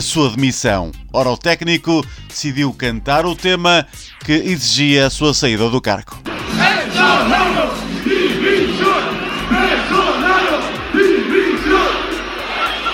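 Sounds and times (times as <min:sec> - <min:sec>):
speech: 0:00.0 - 0:07.5
audience whistling: 0:06.3 - 0:12.9
scattered half-hearted applause: 0:06.3 - 0:12.9
constant roar of shouting voices: 0:06.4 - 0:12.9.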